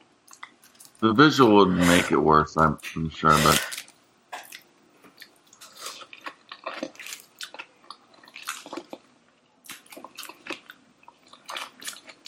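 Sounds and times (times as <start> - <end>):
person eating food with tartar sauce, crunching and smacking: 0.2 - 2.1, 2.8 - 12.2
speech: 1.0 - 3.8.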